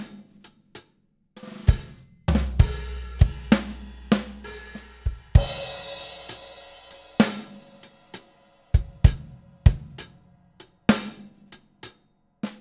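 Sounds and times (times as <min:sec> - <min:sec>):
half time shuffle beat: 0:01.4 - 0:11.4.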